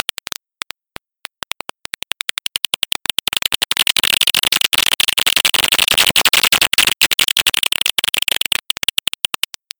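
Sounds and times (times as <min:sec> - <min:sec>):
little brown bat echolocation calls: 0:02.3 - 0:09.5.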